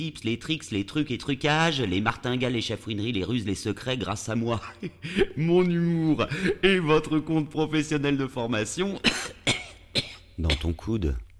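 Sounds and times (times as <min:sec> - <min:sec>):
speech: 0:00.0 - 0:09.4, 0:10.0 - 0:11.3
person clearing throat: 0:09.0 - 0:10.8
person coughing: 0:09.0 - 0:10.8.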